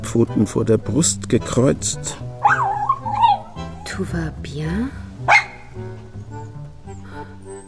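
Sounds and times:
speech: 0.1 - 2.2, 4.0 - 5.4
small light-brown dog barking: 2.4 - 3.6, 5.3 - 5.8
small light-brown dog whining and yipping: 2.4 - 3.9, 5.3 - 7.6.

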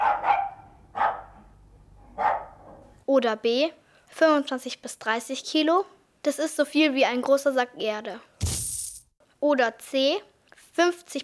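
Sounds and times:
small dog barking in short high-pitched yaps: 0.0 - 1.4, 2.2 - 2.6
speech: 3.2 - 8.3, 9.4 - 11.2.

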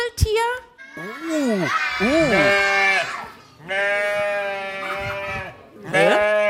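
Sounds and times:
speech: 1.6 - 2.6
recording of a sheep bleating played over loudspeakers at a live event: 1.6 - 6.4.

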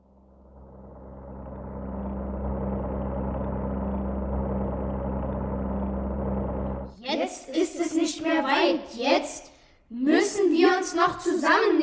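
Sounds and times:
airplane engine droning: 0.0 - 7.0
speech: 7.2 - 11.8.

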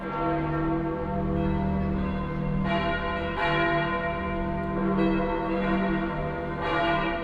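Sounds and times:
large church bells of St. Peter's Basilica in Rome ringing: 0.0 - 7.2.

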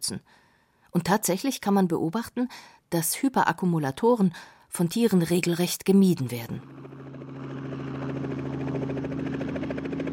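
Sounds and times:
speech: 0.0 - 7.0
helicopter climbing toward a mountain range on a South Sea island: 6.5 - 10.1.

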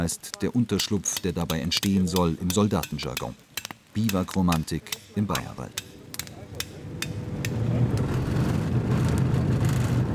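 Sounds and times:
speech: 0.0 - 6.0
sharp knocks: 0.8 - 7.6
Puma infantry fighting vehicle engine rumbling in a rainy forest: 6.0 - 10.1.

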